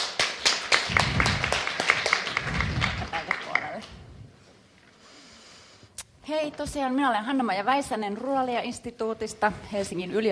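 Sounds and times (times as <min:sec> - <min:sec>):
audience clapping to welcome presenters: 0:00.0 - 0:04.0
speech: 0:06.3 - 0:10.2.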